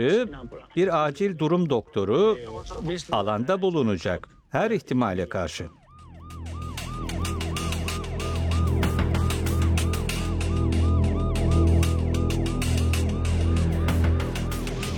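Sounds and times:
speech: 0.0s - 5.8s
ambulance siren wailing: 5.2s - 14.9s.

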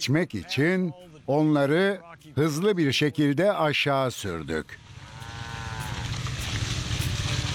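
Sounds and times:
speech: 0.0s - 4.9s
wind on a beach: 0.0s - 7.5s
rumble of cow hooves and bodies along a beach: 4.8s - 7.5s
cow calling on a beach: 5.0s - 6.2s.

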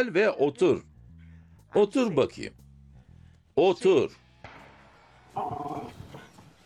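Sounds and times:
speech: 0.0s - 0.9s, 1.7s - 2.6s, 3.6s - 4.2s
dog giving a drawn-out growly bark: 5.3s - 6.3s.

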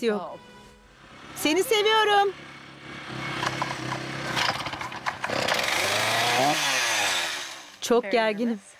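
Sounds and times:
speech: 0.0s - 0.5s, 1.4s - 2.5s, 7.9s - 8.7s
chainsaw cutting down a tall tree threatening a hay pasture: 3.1s - 7.8s.

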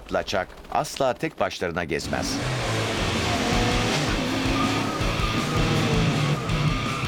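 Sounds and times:
speech: 0.1s - 2.6s
powerful supercar engine roaring as the car arrives: 2.0s - 7.0s
supercar tire noise: 2.0s - 7.0s.

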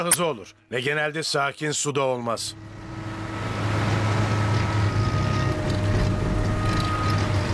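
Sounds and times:
speech: 0.0s - 2.8s
tugboat engine with a clogged fuel filter droning: 2.4s - 7.5s.

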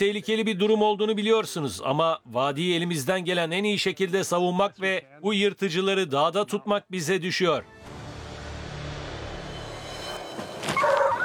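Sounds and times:
speech: 0.0s - 8.0s
dogs yipping and whining in a video game: 10.8s - 11.2s.

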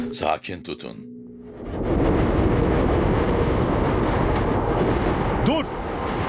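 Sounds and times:
speech: 0.2s - 1.1s
moving train rumbling and rattling on rails: 2.5s - 6.2s.

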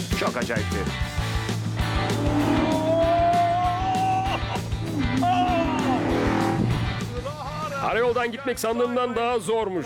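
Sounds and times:
speech: 0.2s - 1.1s, 7.8s - 9.8s
car engine accelerating on a test drive: 1.7s - 3.3s, 4.7s - 7.1s
tire squeals: 1.8s - 6.9s.

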